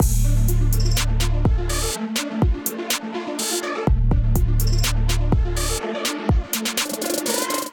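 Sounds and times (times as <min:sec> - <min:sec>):
drum kit groove: 0:00.0 - 0:07.7.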